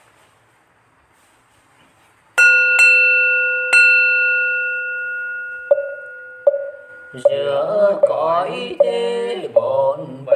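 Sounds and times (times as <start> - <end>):
metallic bell ringing: 2.4 - 9.1
speech: 7.2 - 10.2.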